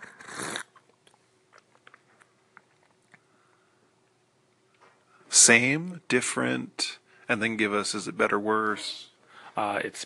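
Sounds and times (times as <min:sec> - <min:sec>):
slurping sip of a drink: 0:00.0 - 0:01.0
speech: 0:05.4 - 0:10.0.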